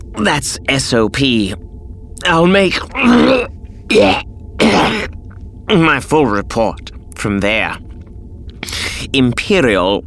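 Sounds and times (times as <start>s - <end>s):
speech: 0.2s - 5.1s, 5.7s - 7.8s, 9.1s - 10.0s
man giving harsh hacking coughs: 2.9s - 5.1s.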